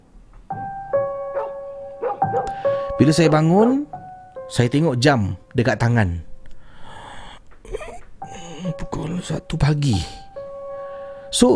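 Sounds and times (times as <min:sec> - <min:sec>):
dog barking at night: 0:01.3 - 0:03.7
speech: 0:02.4 - 0:06.3, 0:08.7 - 0:10.2, 0:11.3 - 0:11.5.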